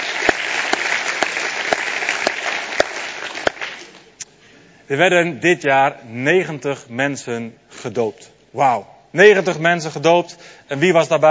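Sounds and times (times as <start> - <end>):
crowd applauding with many hands clapping: 0.0 - 4.2
speech: 4.9 - 11.2.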